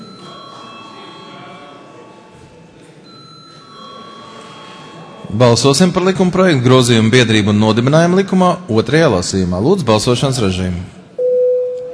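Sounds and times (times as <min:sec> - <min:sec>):
parliamentary bell ringing to call members to a vote: 0:00.0 - 0:02.3, 0:03.0 - 0:05.2
speech: 0:05.3 - 0:11.0.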